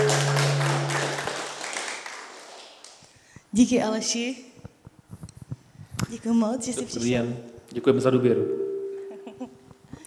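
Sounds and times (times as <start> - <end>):
audience applauding to thank guests: 0.0 - 3.0
speech: 3.6 - 4.5, 6.1 - 8.6.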